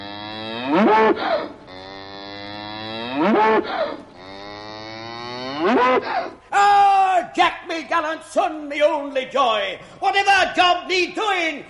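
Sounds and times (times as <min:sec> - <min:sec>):
cow mooing: 0:00.0 - 0:06.1
speech: 0:00.4 - 0:01.5, 0:03.2 - 0:04.0, 0:05.6 - 0:06.7, 0:07.4 - 0:11.6.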